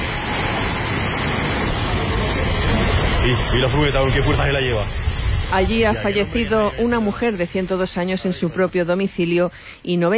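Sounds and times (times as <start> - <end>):
storm floodwater rushing down a street in Madrigueras Albacete Spain: 0.0 - 9.8
speech: 3.2 - 10.1.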